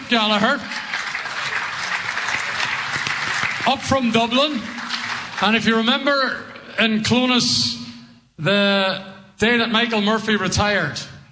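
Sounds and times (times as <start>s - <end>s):
audience applause at a live gathering: 0.0s - 6.1s
speech: 0.1s - 0.8s, 3.7s - 4.7s, 5.4s - 7.8s, 8.4s - 11.1s.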